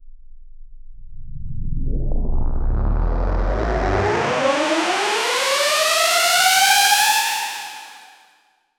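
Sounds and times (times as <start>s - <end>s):
epic riser sound effect: 1.6s - 6.8s.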